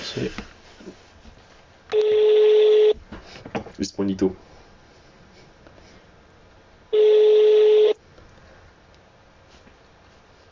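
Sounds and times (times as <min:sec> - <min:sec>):
faint noise: 0:00.0 - 0:10.5
speech: 0:00.2 - 0:01.1, 0:03.8 - 0:04.5
telephone dialing tone on a phone call attempt: 0:02.0 - 0:03.0, 0:07.0 - 0:08.0.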